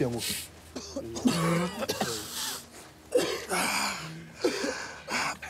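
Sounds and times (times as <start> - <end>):
speech: 0.0 - 0.5
throat clearing: 0.8 - 2.4
person coughing: 0.8 - 5.3.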